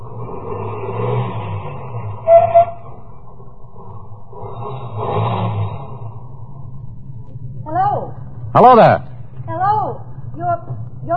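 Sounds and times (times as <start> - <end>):
car engine humming: 0.0 - 11.1
short high squeal: 2.2 - 3.0
speech: 8.6 - 9.1.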